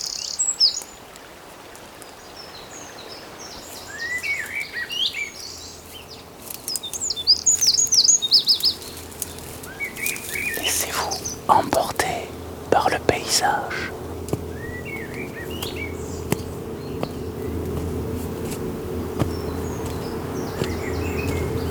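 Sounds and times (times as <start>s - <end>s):
several birds singing warbling phrases and chirps: 2.5s - 11.7s, 13.9s - 21.6s
steady hiss: 8.6s - 21.6s.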